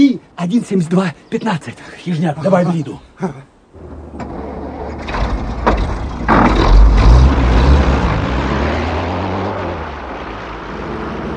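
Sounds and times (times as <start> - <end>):
speech: 0.5 - 3.5
vehicle engine driving out of a side lane onto a highway: 3.6 - 11.3.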